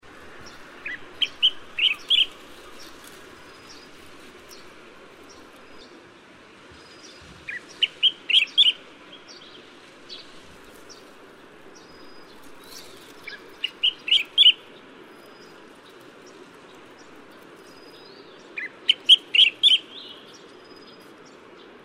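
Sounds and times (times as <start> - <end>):
collared finchbill calling: 0.0 - 5.6, 7.5 - 8.9, 11.8 - 16.1, 17.0 - 20.8.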